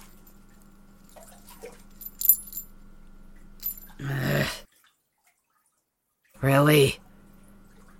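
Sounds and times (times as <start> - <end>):
steady low hum: 0.0 - 4.5
small bells jingling on a collar: 1.9 - 2.7, 3.6 - 4.0
speech: 6.4 - 7.0.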